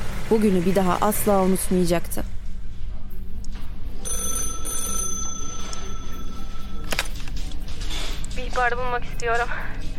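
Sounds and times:
speech: 0:00.3 - 0:02.4, 0:08.6 - 0:09.8
telephone ringing in an electronic tone: 0:04.0 - 0:07.4.

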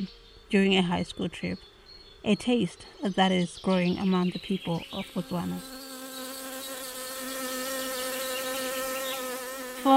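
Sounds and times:
speech: 0:00.0 - 0:05.8
beekeeper's bees buzzing in Botswana: 0:04.8 - 0:09.9.

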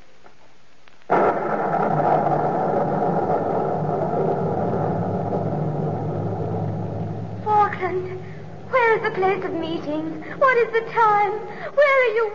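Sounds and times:
heavy continuous low rumble of storm thunder: 0:01.1 - 0:10.4
loud crack of thunder: 0:01.1 - 0:11.6
speech: 0:09.1 - 0:12.3.

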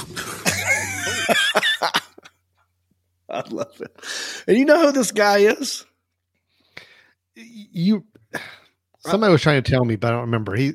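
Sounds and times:
person coughing and choking from something stuck deep in the throat: 0:00.0 - 0:02.2, 0:08.3 - 0:08.8
laughter: 0:00.1 - 0:02.4, 0:03.3 - 0:04.0
speech: 0:01.3 - 0:02.0, 0:03.4 - 0:05.9, 0:07.4 - 0:10.7.

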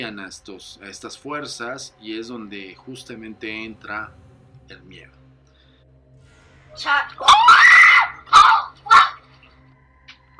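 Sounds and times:
speech: 0:00.0 - 0:05.2, 0:06.8 - 0:07.7
children screaming in a recorded video clip: 0:07.1 - 0:09.3.

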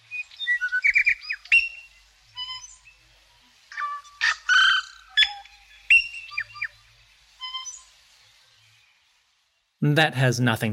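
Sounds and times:
tui singing a varied complex song: 0:00.0 - 0:09.7
speech: 0:09.8 - 0:10.7.

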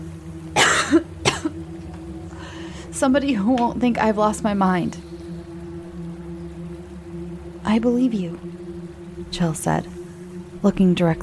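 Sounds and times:
faint steady hum: 0:00.0 - 0:11.2
woman coughing: 0:00.6 - 0:01.6
speech: 0:00.9 - 0:01.1, 0:03.0 - 0:05.0, 0:07.7 - 0:08.6, 0:09.2 - 0:09.9, 0:10.6 - 0:11.2.

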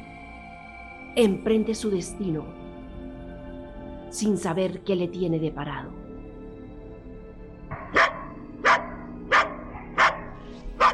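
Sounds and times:
speech: 0:01.2 - 0:02.6, 0:04.1 - 0:06.0
dog barking sharply: 0:07.7 - 0:10.9.

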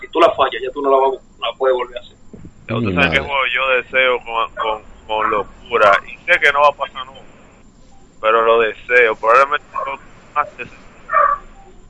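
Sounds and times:
low hiss: 0:00.0 - 0:11.8
speech: 0:00.8 - 0:02.0, 0:02.8 - 0:04.7
dog barking: 0:09.7 - 0:10.0, 0:11.1 - 0:11.5.

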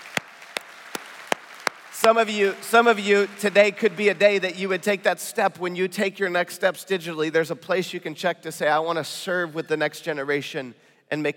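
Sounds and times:
sparse faint audience applause: 0:00.0 - 0:04.3
speech: 0:02.0 - 0:11.3.

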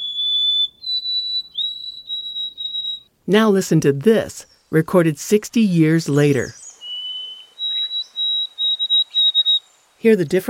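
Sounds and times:
White-throated Sparrow song of pure whistles: 0:00.0 - 0:03.1, 0:06.5 - 0:09.7
speech: 0:03.3 - 0:06.6, 0:10.0 - 0:10.4.

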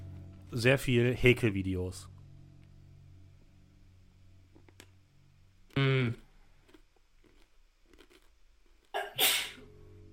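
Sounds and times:
speech: 0:00.5 - 0:02.1, 0:05.8 - 0:06.2
forceful sneeze: 0:09.0 - 0:09.7.

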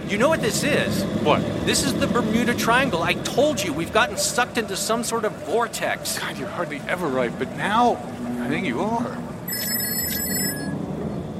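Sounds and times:
speech: 0:00.1 - 0:09.3
telephone ringing with a bright electronic trill: 0:09.5 - 0:10.8.

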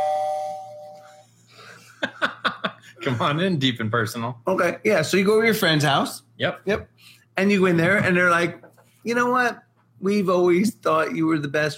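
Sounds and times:
doorbell chime: 0:00.0 - 0:01.2
laughter: 0:01.6 - 0:03.4
speech: 0:03.0 - 0:11.7.

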